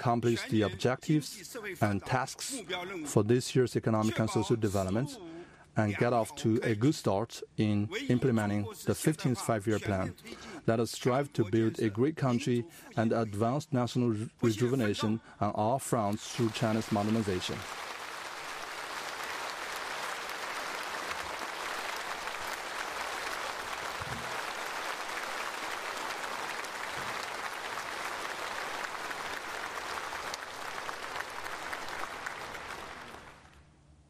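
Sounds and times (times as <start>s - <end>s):
speech: 0.0s - 17.9s
large audience applauding after a speech: 16.1s - 33.6s.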